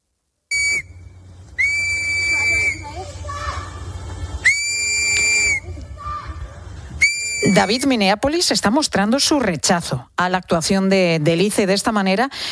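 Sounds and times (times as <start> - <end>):
shrill warning whistle blasts blown by protesting residents in Minneapolis: 0.5 - 1.0, 1.6 - 3.0, 4.4 - 5.7, 7.0 - 7.9
outdoor crowd noise: 0.5 - 12.5
speech: 7.6 - 12.5.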